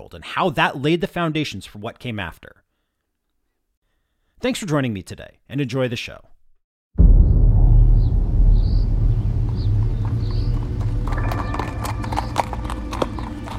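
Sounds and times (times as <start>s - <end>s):
speech: 0.0s - 2.6s, 4.4s - 6.3s
loud constant low wind rumble: 7.0s - 13.5s
horse hooves clopping on a rough gravel road: 9.4s - 13.5s.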